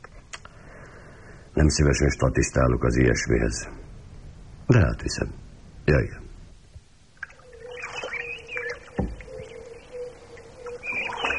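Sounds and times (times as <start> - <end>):
speech: 1.6 - 3.8, 4.7 - 6.2
faint water sounds at a reedy lake: 7.0 - 11.3
birds calling with rising chirps and whistles at a reedy lake: 7.3 - 11.3
knock: 9.0 - 9.2.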